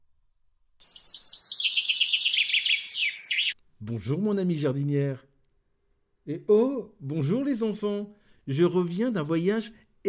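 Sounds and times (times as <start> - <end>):
finch chirping: 0.8 - 3.6
speech: 3.8 - 5.3, 6.3 - 10.0.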